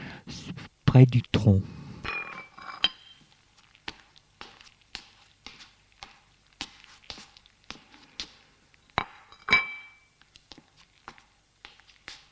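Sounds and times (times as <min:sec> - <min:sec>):
speech: 0:01.0 - 0:01.8
dishes and cutlery clinking: 0:02.0 - 0:03.3, 0:08.9 - 0:10.2
plate being set down: 0:09.0 - 0:10.0.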